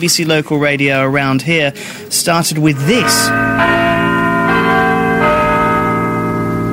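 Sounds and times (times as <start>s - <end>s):
speech: 0.0s - 4.9s
large city clock bells chiming: 2.1s - 6.7s.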